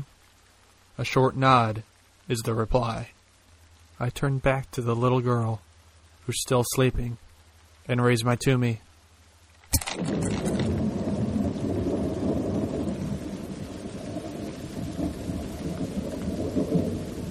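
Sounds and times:
heavy steady rain: 0:00.0 - 0:17.2
speech: 0:01.0 - 0:03.2, 0:04.0 - 0:05.7, 0:06.3 - 0:07.2, 0:07.9 - 0:08.9, 0:09.7 - 0:10.5
sharp crack of thunder: 0:09.8 - 0:17.2.

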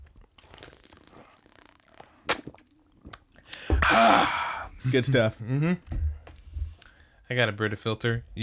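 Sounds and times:
person sipping water from a cup: 0:00.0 - 0:03.7
speech: 0:04.0 - 0:06.0, 0:07.3 - 0:08.4.

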